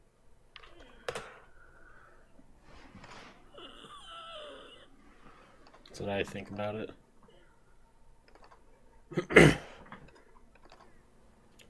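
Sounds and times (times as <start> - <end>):
speech: 6.0 - 7.0, 9.1 - 9.6
throat clearing from something caught in the throat: 9.1 - 9.8.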